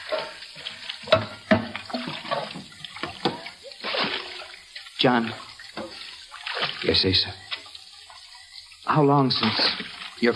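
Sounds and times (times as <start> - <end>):
bucket bailing water out of a boat: 0.0 - 10.3
speech: 5.0 - 5.4, 6.8 - 7.4, 8.9 - 10.3.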